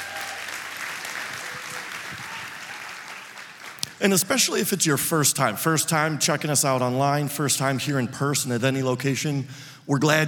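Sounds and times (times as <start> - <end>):
large audience applauding in a church: 0.0 - 3.8
speech: 4.0 - 10.2.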